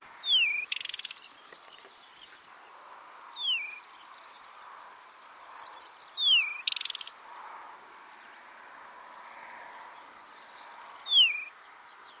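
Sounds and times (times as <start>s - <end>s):
Oenanthe deserti call: 0.2s - 2.4s, 3.4s - 3.8s, 6.2s - 7.2s, 11.0s - 12.1s.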